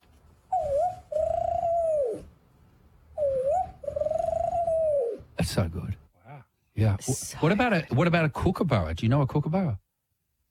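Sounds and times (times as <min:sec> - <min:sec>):
voice imitating an Australian spotted dove call: 0:00.6 - 0:02.3, 0:03.2 - 0:05.3
speech: 0:05.5 - 0:06.0, 0:06.8 - 0:09.8.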